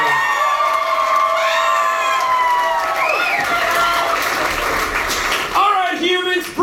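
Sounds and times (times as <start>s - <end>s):
large audience cheering with high excited shouts and whoops: 0.0s - 4.7s
large audience applauding: 0.0s - 6.6s.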